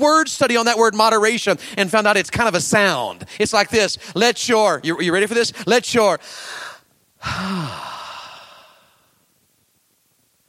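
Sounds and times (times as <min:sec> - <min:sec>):
speech: 0:00.0 - 0:08.0
deep breath exhaled as a long breathy sigh: 0:06.3 - 0:09.2.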